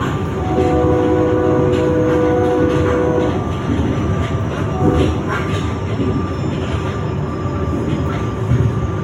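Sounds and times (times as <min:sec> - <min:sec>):
passenger train rumbling and rattling: 0:00.0 - 0:09.0
passenger train whistle: 0:00.4 - 0:03.6.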